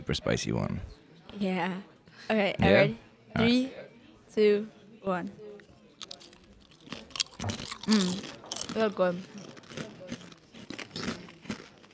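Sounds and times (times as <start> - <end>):
speech: 0.1 - 5.4, 7.4 - 9.4
crunching chips: 6.0 - 11.9.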